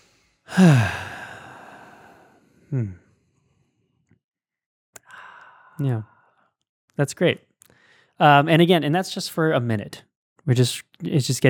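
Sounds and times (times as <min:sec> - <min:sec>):
deep breaths during a guided relaxation exercise: 0:00.0 - 0:03.7, 0:05.0 - 0:06.5, 0:07.7 - 0:08.2
speech: 0:00.5 - 0:01.0, 0:02.7 - 0:03.0, 0:05.8 - 0:06.1, 0:07.0 - 0:07.5, 0:08.2 - 0:11.4.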